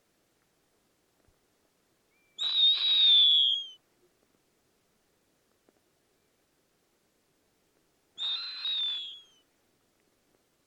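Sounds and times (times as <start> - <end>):
snowy owl giving a short high raspy whistled scream: 2.4 - 3.8, 8.2 - 9.4.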